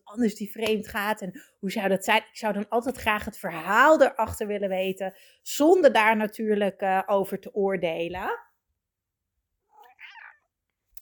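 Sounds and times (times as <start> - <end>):
speech: 0.1 - 8.5
cat meowing: 9.7 - 10.4.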